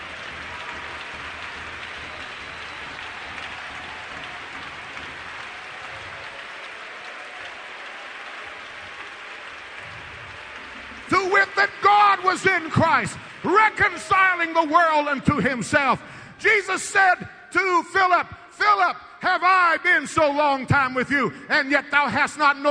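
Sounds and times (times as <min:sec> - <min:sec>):
audience clapping hands: 0:00.0 - 0:16.6
speech: 0:11.3 - 0:22.6.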